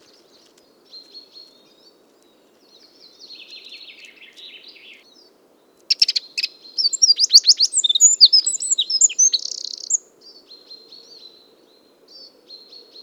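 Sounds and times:
Eurasian wren Troglodytes troglodytes trilling and warbling: 5.9s - 10.0s.

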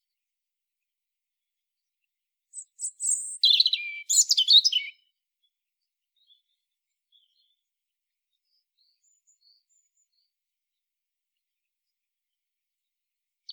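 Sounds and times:
European robin Erithacus rubecula singing thin tumbling trills: 2.5s - 5.5s, 8.4s - 10.4s.

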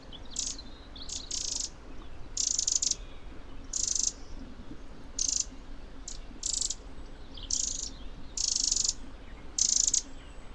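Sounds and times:
quiet background noise: 0.0s - 10.5s
Eurasian wren Troglodytes troglodytes churring: 0.2s - 1.8s, 2.4s - 3.1s, 3.7s - 4.2s, 5.2s - 5.5s, 6.1s - 6.8s, 7.4s - 10.1s.

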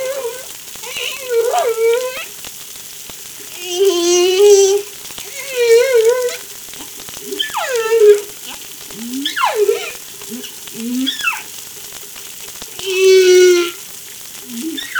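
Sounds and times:
whale moans: 0.0s - 2.3s, 3.5s - 11.6s, 12.8s - 13.8s, 14.4s - 14.9s.

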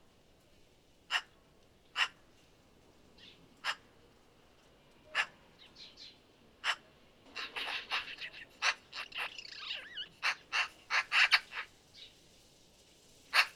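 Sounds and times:
Eurasian magpie calling, Pica pica: 7.4s - 11.7s, 13.4s - 13.5s.

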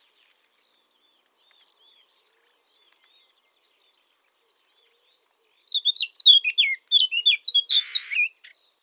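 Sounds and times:
Eurasian blackcap Sylvia atricapilla singing: 5.7s - 8.4s.

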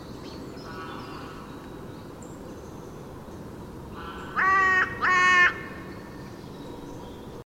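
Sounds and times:
faint background noise: 0.0s - 7.4s
Carrion crow Corvus corone cawing: 0.7s - 1.5s, 3.9s - 5.9s.

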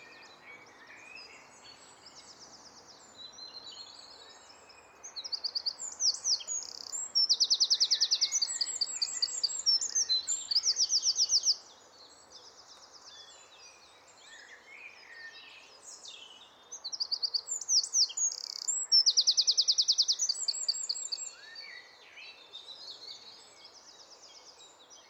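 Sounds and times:
background hiss: 0.0s - 25.0s
Eurasian wren Troglodytes troglodytes trilling song: 5.1s - 11.6s, 16.8s - 21.5s.

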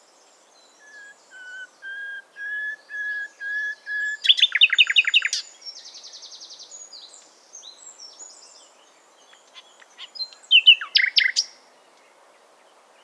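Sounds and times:
common nightingale Luscinia megarhynchos singing: 0.0s - 13.0s.

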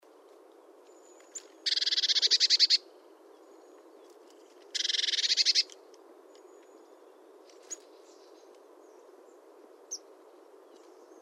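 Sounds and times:
Eurasian blue tit Cyanistes caeruleus churring rattles: 1.6s - 2.8s, 4.8s - 5.7s.

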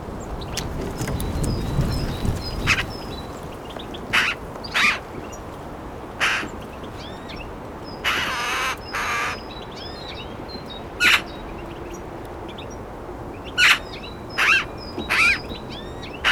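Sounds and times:
small birds chirping: 0.0s - 16.3s
Eurasian magpie giving harsh rasping chack calls, Pica pica: 6.2s - 7.3s, 8.0s - 10.1s, 11.0s - 11.4s, 13.5s - 16.3s.

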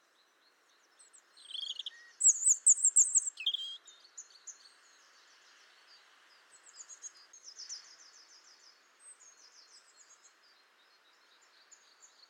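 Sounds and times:
European robin Erithacus rubecula song: 1.3s - 3.8s.

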